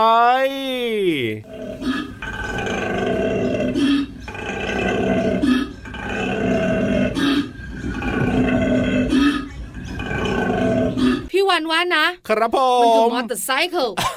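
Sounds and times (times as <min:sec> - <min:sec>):
speech: 0:00.0 - 0:02.0, 0:11.5 - 0:14.1
koala bellowing with deep rasping pulses and belch-like grunts: 0:01.4 - 0:11.3.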